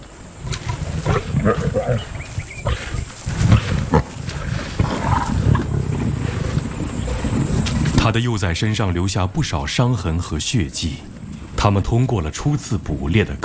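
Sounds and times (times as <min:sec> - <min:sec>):
several lions snarling and roaring at a giraffe kill: 0:00.0 - 0:08.2
speech: 0:01.4 - 0:02.8, 0:08.1 - 0:13.4.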